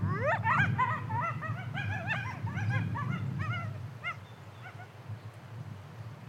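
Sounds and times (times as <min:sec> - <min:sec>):
coyotes yelping in a group chorus: 0:00.0 - 0:05.0.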